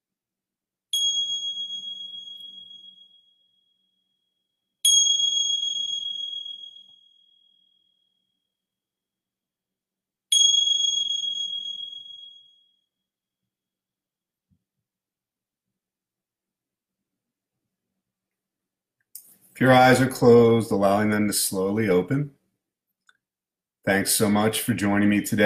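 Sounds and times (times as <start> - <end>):
meditation bell ringing: 1.0 - 4.1, 4.8 - 8.4, 10.3 - 13.0
speech: 19.6 - 22.4, 23.9 - 25.4.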